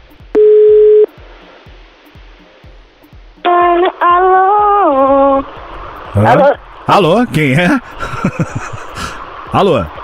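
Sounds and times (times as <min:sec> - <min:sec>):
faint pulsing noise: 0:00.0 - 0:10.0
telephone line tone as a call is placed: 0:00.4 - 0:01.1
speech: 0:06.2 - 0:10.0
laughter: 0:07.6 - 0:09.2.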